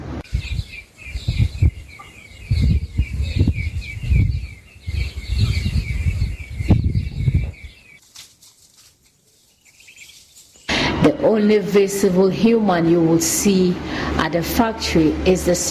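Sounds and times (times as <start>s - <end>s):
birds chirping in a thin high-pitched chorus: 0.2s - 8.1s, 9.1s - 13.1s
low uneven rustling and thumping: 7.0s - 10.7s
speech: 11.3s - 15.6s.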